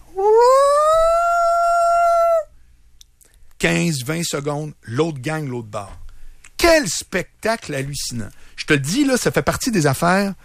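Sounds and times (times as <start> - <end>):
wolf howling: 0.1 - 2.5
speech: 3.6 - 6.0, 6.6 - 10.4.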